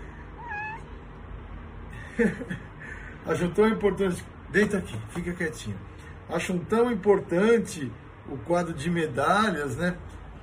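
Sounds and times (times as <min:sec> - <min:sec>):
cat meowing: 0:00.3 - 0:01.0
speech: 0:02.2 - 0:10.4.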